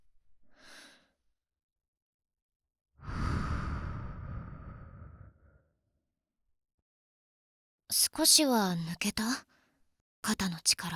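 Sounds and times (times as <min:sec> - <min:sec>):
slow breathing during a guided relaxation exercise: 0:03.0 - 0:05.6
speech: 0:07.9 - 0:09.5, 0:10.2 - 0:10.9.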